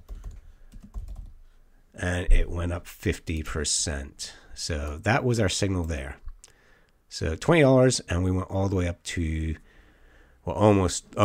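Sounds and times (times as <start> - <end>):
typing on a computer keyboard: 0.0 - 1.4
speech: 2.0 - 6.2, 7.1 - 9.6, 10.4 - 11.2.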